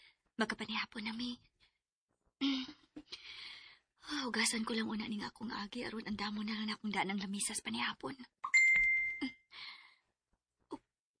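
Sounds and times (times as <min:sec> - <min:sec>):
speech: 0:00.4 - 0:01.6, 0:04.1 - 0:08.4
phone chat message notification ding: 0:08.5 - 0:09.3.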